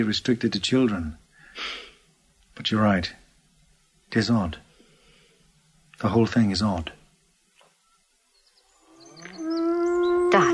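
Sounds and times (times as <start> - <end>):
speech: 0.0 - 1.8, 2.6 - 3.2, 4.1 - 4.6, 6.0 - 7.0
cow mooing: 8.8 - 10.5.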